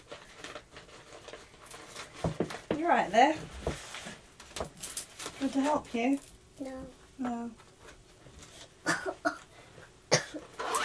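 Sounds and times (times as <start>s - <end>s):
speech: 2.2s - 3.6s, 5.4s - 7.6s
baby coughing: 8.8s - 9.5s, 10.1s - 10.5s.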